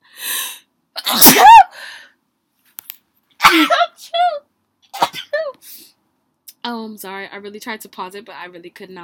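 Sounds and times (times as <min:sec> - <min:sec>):
loud sneeze: 0:01.0 - 0:01.7, 0:04.9 - 0:05.4
speech: 0:06.9 - 0:09.0.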